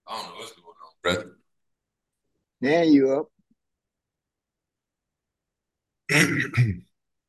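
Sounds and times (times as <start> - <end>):
speech: 2.6 - 3.3, 6.1 - 6.9
person coughing with a raspy throaty edge: 6.1 - 6.8.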